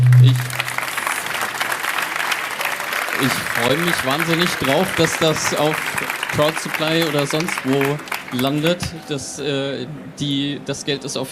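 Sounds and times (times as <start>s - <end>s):
brief low tone: 0.0s - 0.7s
audience applause: 0.0s - 9.2s
speech: 3.2s - 11.3s.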